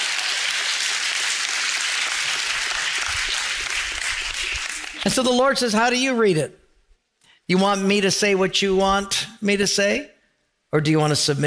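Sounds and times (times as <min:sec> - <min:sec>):
audience clapping: 0:00.0 - 0:05.4
speech: 0:05.0 - 0:06.6, 0:07.5 - 0:10.1, 0:10.7 - 0:11.4.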